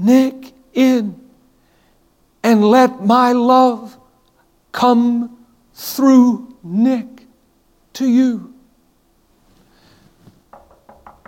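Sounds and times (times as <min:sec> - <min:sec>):
speech: 0:00.0 - 0:01.2, 0:02.6 - 0:04.0, 0:04.8 - 0:07.2, 0:08.0 - 0:08.6
woman knocking on a closet door: 0:10.5 - 0:11.2.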